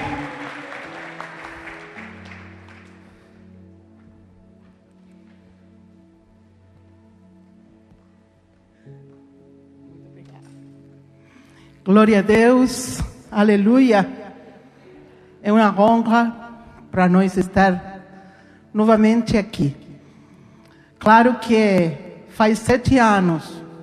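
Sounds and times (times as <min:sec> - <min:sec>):
crowd applauding: 0:00.0 - 0:03.4
speech: 0:11.9 - 0:14.2, 0:15.6 - 0:16.4, 0:17.0 - 0:17.9, 0:18.8 - 0:19.8, 0:21.0 - 0:23.6.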